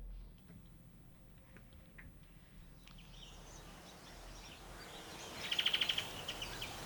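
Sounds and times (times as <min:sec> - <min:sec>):
steady hiss of noise: 0:00.0 - 0:06.8
birds chirping: 0:02.7 - 0:06.8.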